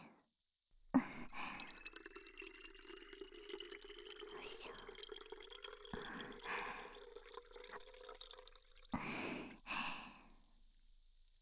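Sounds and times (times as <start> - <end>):
liquid poured into a plastic bottle: 0.9 - 10.0.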